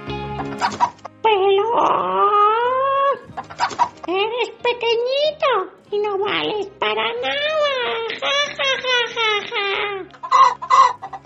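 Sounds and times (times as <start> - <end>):
hen clucking: 0.3 - 1.1, 3.2 - 4.1, 8.0 - 11.2
speech: 0.4 - 2.3, 4.1 - 9.2.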